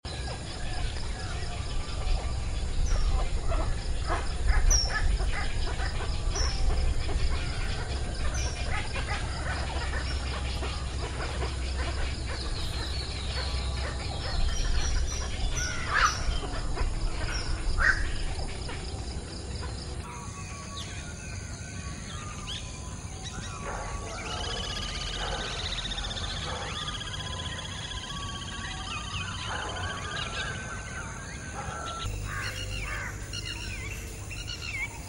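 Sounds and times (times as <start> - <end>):
three birds: 0.0 - 35.0.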